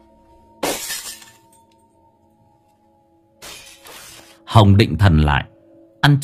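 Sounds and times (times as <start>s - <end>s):
glass shattering under a hard blow from a stick: 0.6s - 1.8s, 3.4s - 4.4s
speech: 4.5s - 6.2s.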